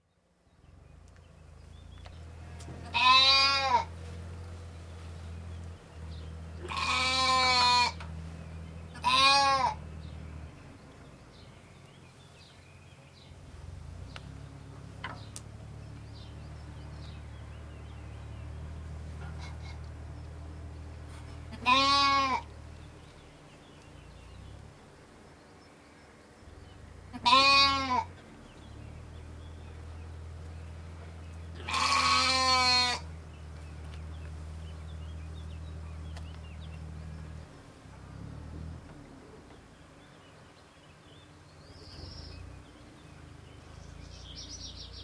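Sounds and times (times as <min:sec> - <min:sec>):
birds singing: 0:00.0 - 0:45.0
young goats bleating: 0:02.4 - 0:04.0, 0:06.6 - 0:08.0, 0:09.0 - 0:09.8, 0:21.4 - 0:22.5, 0:27.1 - 0:28.1, 0:31.5 - 0:33.1.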